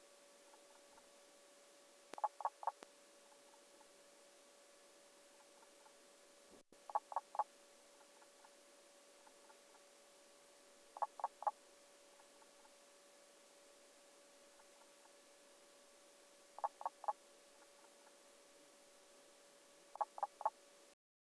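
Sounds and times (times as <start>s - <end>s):
Pelobates fuscus frogs calling: 2.2s - 2.8s, 6.8s - 7.5s, 11.0s - 11.6s, 16.6s - 17.2s, 19.9s - 20.6s.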